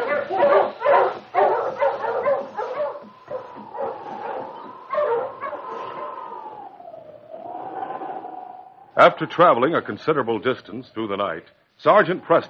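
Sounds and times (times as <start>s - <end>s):
husky sled dogs barking and yipping at night: 0.0s - 7.6s
husky sled dog whining: 0.0s - 9.0s
speech: 9.0s - 12.4s.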